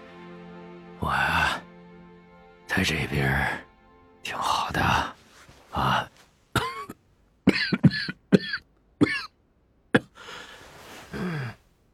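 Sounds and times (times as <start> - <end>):
speech: 1.0 - 1.4, 2.8 - 5.1
man coughing with blood in his throat: 6.6 - 9.3.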